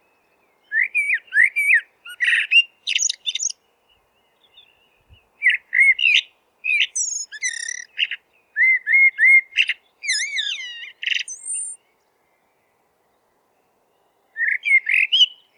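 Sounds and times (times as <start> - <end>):
Eurasian blackbird song: 0.0 - 15.5.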